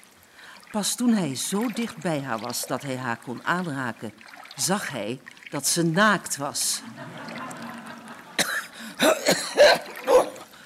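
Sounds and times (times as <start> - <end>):
speech: 0.7 - 7.8, 9.3 - 10.4
laughter: 6.8 - 8.9
man coughing after swimming underwater: 8.4 - 10.5
wet throat-clearing: 8.4 - 10.5.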